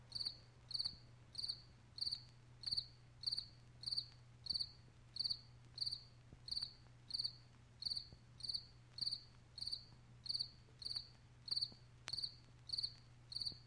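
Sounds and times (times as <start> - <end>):
low steady hum: 0.0 - 13.6
cricket chirping: 0.1 - 13.6.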